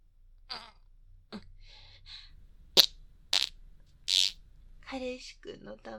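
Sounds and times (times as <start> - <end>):
soft breathy sounds: 0.6 - 2.7
short farts: 2.8 - 3.5, 4.1 - 4.4
speech: 4.9 - 5.9.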